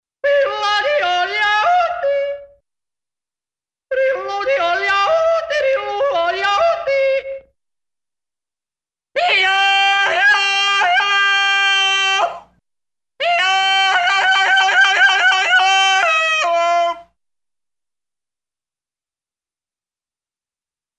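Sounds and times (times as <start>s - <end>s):
cartoon man yodeling: 0.2s - 2.6s, 3.9s - 7.5s, 9.2s - 12.5s, 13.2s - 17.1s.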